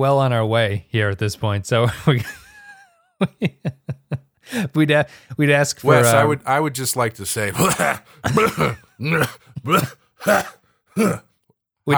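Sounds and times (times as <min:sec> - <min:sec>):
speech: 0:00.0 - 0:02.4, 0:03.2 - 0:11.3
coughing and throat clearing: 0:06.0 - 0:11.2.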